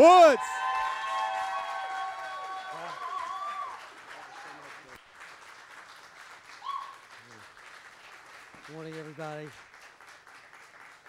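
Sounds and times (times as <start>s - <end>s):
speech: 0.0s - 0.7s, 8.8s - 9.7s
person whooping: 0.0s - 3.8s
crowd cheering: 0.0s - 5.9s, 6.5s - 7.4s
large crowd applauding: 0.0s - 11.0s.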